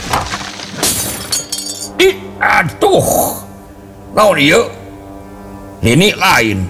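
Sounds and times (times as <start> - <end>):
glassware and dishes shattering as they fall from a table during violent shaking: 0.0 - 1.9
speech: 2.0 - 3.4, 4.2 - 4.8, 5.8 - 6.6.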